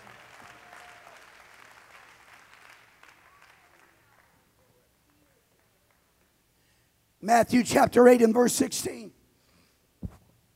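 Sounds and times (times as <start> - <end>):
audience clapping hands: 0.0 - 6.3
speech: 7.2 - 9.2.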